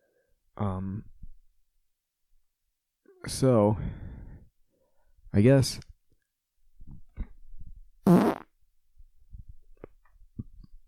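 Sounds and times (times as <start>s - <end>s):
speech: 0.6s - 1.1s, 3.2s - 4.0s, 5.3s - 5.9s
loud rasping fart: 8.0s - 8.5s.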